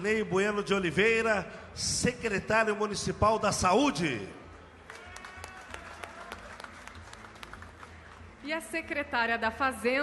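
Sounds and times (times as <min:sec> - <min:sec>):
speech: 0:00.0 - 0:04.4, 0:08.4 - 0:10.0
audience applauding: 0:04.8 - 0:08.4.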